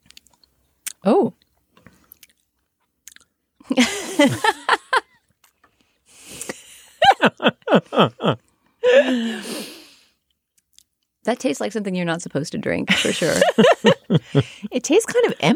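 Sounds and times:
speech: 1.0s - 1.4s, 3.8s - 4.7s, 7.4s - 8.4s, 11.3s - 15.5s
laughter: 3.7s - 5.1s, 6.7s - 9.2s, 12.9s - 15.5s
people gulping a thick drink: 7.3s - 9.8s
rough exhale: 9.1s - 10.2s.

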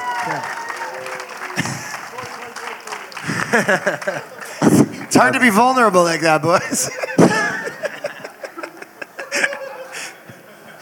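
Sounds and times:
audience whoops: 0.0s - 1.7s
live audience applause: 0.0s - 10.1s
laughter: 0.0s - 10.7s
speech: 0.2s - 0.6s, 3.5s - 7.3s.

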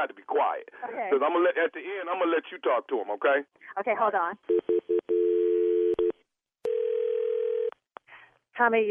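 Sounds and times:
speech: 0.0s - 5.0s, 8.6s - 8.8s
electronic phone line ringing tone: 4.5s - 7.7s.

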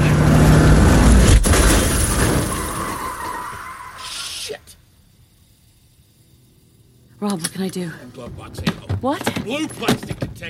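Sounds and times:
car skidding out of control with tires and engine roaring: 0.0s - 4.6s
speech: 7.2s - 10.4s.

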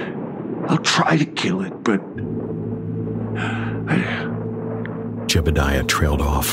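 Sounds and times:
constant low hum: 0.0s - 6.5s
hiss on an old tape recording: 0.0s - 6.5s
howling storm wind gusts on an old tape recording: 0.0s - 6.5s
speech: 0.7s - 2.6s, 3.4s - 4.2s, 5.3s - 6.5s.

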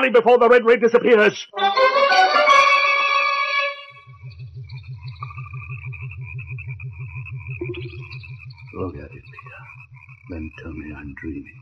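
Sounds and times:
speech: 0.0s - 2.3s, 8.8s - 11.6s
eerie wavering tones: 1.8s - 11.6s
low rapidly pulsing throb: 3.8s - 11.6s
giant frog 36 centimeters long croaking deeply: 4.0s - 11.6s.

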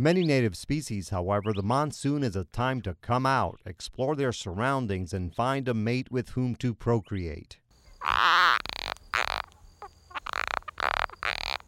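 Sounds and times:
speech: 0.0s - 8.8s
spadefoot toad giving harsh wavering calls in the southern Arizona desert during summer monsoon: 7.8s - 11.6s.

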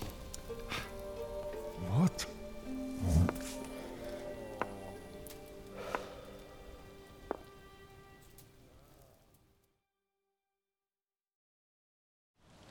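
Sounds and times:
steady rain: 0.0s - 9.2s.

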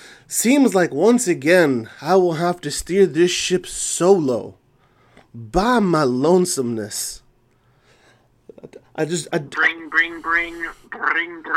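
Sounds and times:
speech: 0.3s - 4.6s, 5.3s - 7.2s, 8.6s - 11.5s
voice imitating a telephone ringing: 9.4s - 11.5s.

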